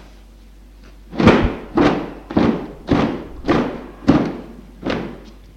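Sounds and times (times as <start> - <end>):
blanket being shaken out at an open window: 1.1 - 5.2.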